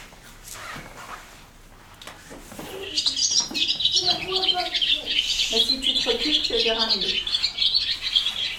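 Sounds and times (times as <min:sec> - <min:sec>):
recording of swallow song playing back: 0:02.7 - 0:08.5
speech: 0:05.5 - 0:07.3.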